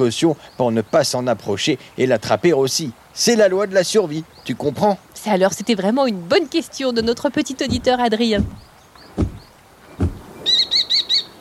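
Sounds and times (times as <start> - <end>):
speech: 0.0 - 9.4
soft low thumps: 6.9 - 10.3
falcon calling with shrill cries: 7.0 - 11.3.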